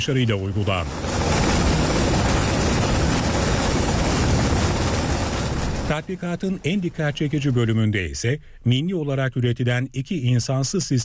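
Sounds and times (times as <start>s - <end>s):
speech: 0.0s - 1.5s, 5.9s - 11.0s
helicopter rotor and engine roar during a military casualty evacuation exercise: 0.0s - 8.1s.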